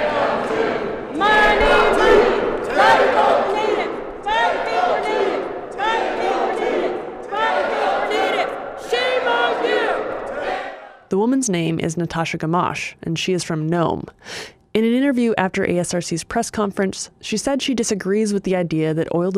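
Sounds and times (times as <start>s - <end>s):
large crowd of leaders and supporters chanting in unison: 0.0s - 11.1s
speech: 11.3s - 19.3s.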